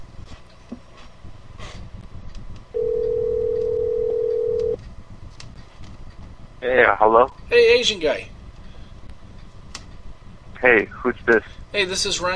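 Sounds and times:
telephone ringback tone: 2.8s - 4.8s
speech: 6.7s - 8.3s, 10.6s - 12.3s.

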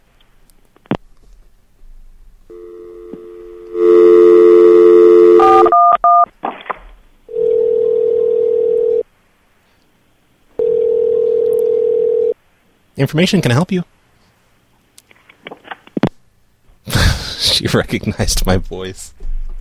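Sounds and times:
telephone dial tone: 2.5s - 6.3s, 7.3s - 9.0s, 10.6s - 12.4s
telephone keypad beeps: 5.4s - 6.3s
speech: 13.0s - 13.9s, 17.8s - 19.2s.

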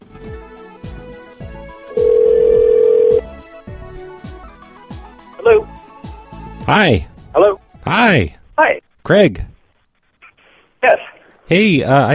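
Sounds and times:
telephone ring tone for a call placed from a curling club: 1.9s - 3.2s
speech: 6.7s - 9.5s, 10.8s - 12.1s.

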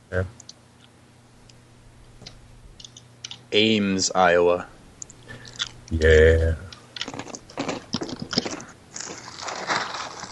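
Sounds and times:
speech: 0.1s - 0.4s, 3.5s - 4.7s, 5.9s - 6.6s
crunchy honey Cheerios cereal being chewed: 5.4s - 6.0s, 7.0s - 10.3s.

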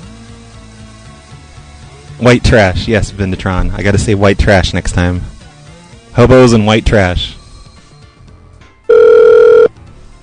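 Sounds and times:
speech: 2.2s - 5.3s, 6.2s - 7.4s
telephone ringback tone over a phone line: 8.9s - 9.7s.

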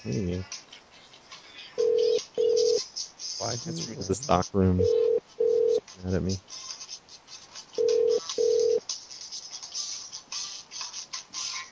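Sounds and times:
speech: 0.0s - 0.8s, 3.4s - 5.0s, 6.0s - 6.7s
low hiss: 0.0s - 11.7s
telephone ringback tones on an outgoing call to a store: 1.8s - 2.8s, 4.8s - 5.8s, 7.8s - 8.8s.

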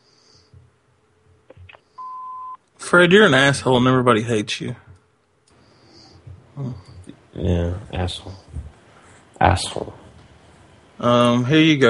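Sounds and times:
answering machine beep: 1.5s - 2.6s
speech: 2.9s - 4.8s, 7.4s - 8.4s, 9.4s - 10.0s, 11.0s - 11.8s.

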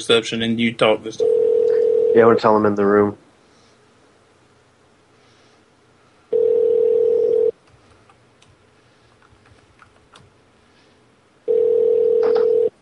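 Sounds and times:
speech: 0.0s - 1.4s, 2.1s - 3.2s
ringback tone of an outgoing phone call: 1.2s - 2.2s, 6.3s - 7.5s, 11.5s - 12.7s
faint clicks and rustles: 7.6s - 10.4s.

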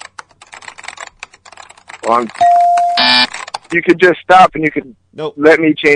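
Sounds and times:
typing on a computer keyboard: 0.0s - 3.8s
speech: 2.0s - 5.9s
loud steady electronic beep: 2.4s - 3.3s.

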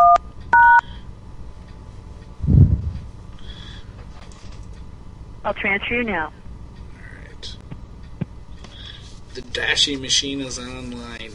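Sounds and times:
telephone keypad tones dialing an extension on an automated company phone line: 0.0s - 0.8s
low rumble: 2.4s - 3.3s
speech: 5.5s - 6.4s, 9.6s - 11.3s.

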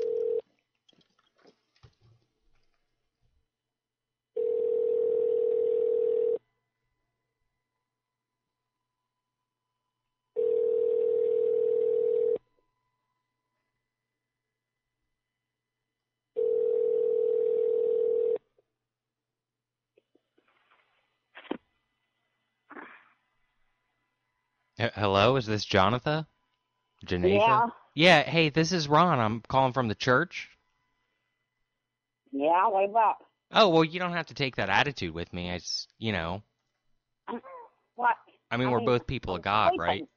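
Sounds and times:
phone line ringback tone while calling a cell phone: 0.0s - 0.4s, 4.4s - 6.4s, 10.4s - 12.4s, 16.4s - 18.4s
speech: 24.8s - 26.3s, 27.0s - 30.6s, 32.3s - 36.5s, 37.3s - 40.1s.

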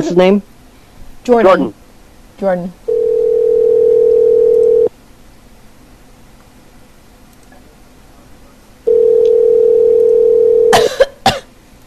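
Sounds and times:
speech: 0.0s - 0.5s, 1.2s - 1.8s, 2.4s - 2.8s
telephone dial tone: 2.9s - 4.9s, 8.9s - 10.7s
person coughing: 10.7s - 11.5s.

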